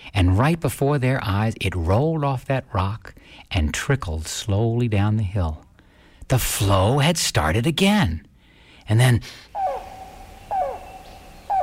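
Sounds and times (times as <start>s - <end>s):
hiss: 0.0s - 11.6s
speech: 0.2s - 5.6s, 6.3s - 8.3s, 8.9s - 9.5s
rain crow calling: 9.5s - 11.6s.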